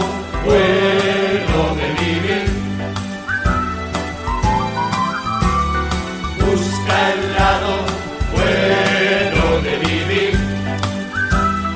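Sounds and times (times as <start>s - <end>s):
rhythmic musical accompaniment with strummed hits: 0.0s - 11.7s
speech: 0.4s - 1.1s
person whistling a bouncy tune: 3.2s - 6.5s, 10.9s - 11.7s.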